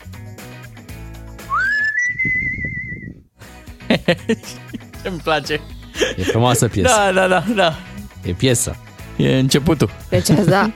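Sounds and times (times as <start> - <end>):
whistled melody at the start of a song: 1.4 - 3.2
soft rhythmic instrumental backing: 3.4 - 10.7
laughter: 3.8 - 7.8
speech: 3.9 - 10.7.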